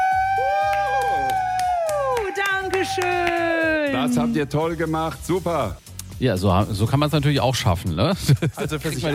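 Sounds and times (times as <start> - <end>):
drawn-out high shouts: 0.0 - 4.5
group cheering: 0.0 - 4.5
scattered sharp claps: 0.0 - 4.5
speech: 2.8 - 9.1.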